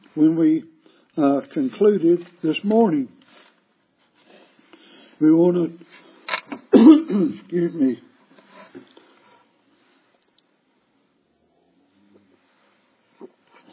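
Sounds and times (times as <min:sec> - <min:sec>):
speech: 0:00.2 - 0:03.2, 0:05.2 - 0:06.0, 0:06.8 - 0:08.1
brief cough: 0:06.7 - 0:07.5
throat clearing in harsh rasping bursts: 0:06.7 - 0:07.5.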